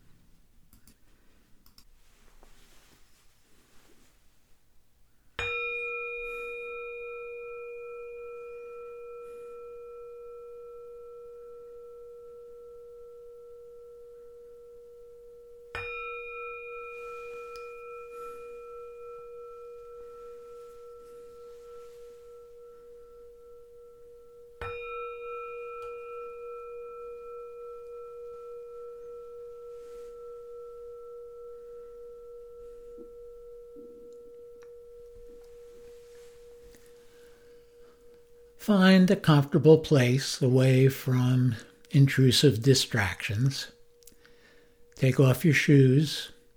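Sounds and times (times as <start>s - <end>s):
resonant meditation bells ringing: 5.4s - 42.3s
speech: 38.6s - 43.8s, 45.0s - 46.4s.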